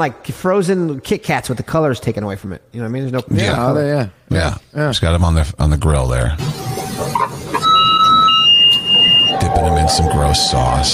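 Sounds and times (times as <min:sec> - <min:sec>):
speech: 0:00.0 - 0:07.3, 0:09.6 - 0:10.9
loud sustained high-pitched electronic beeping tone: 0:06.4 - 0:10.9.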